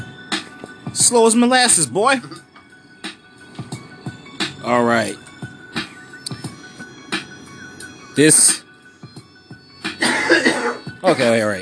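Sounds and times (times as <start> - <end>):
speech: 0.9 - 2.5, 4.7 - 5.2, 8.2 - 8.6, 11.0 - 11.6
person coughing and throat-clearing: 10.0 - 11.4.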